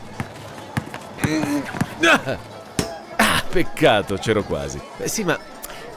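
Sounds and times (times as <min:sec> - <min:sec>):
basketball bouncing: 0:00.0 - 0:02.0
voices talking and calling out: 0:00.0 - 0:05.9
speech: 0:01.3 - 0:02.5, 0:03.5 - 0:05.6.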